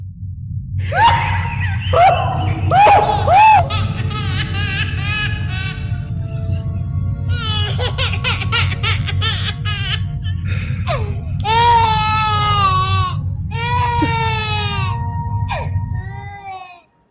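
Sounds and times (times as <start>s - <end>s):
low droning hum: 0.0s - 16.6s
woman moaning, gasping and wailing as if in labor: 0.8s - 3.8s, 10.9s - 16.6s
laughter: 0.9s - 6.7s.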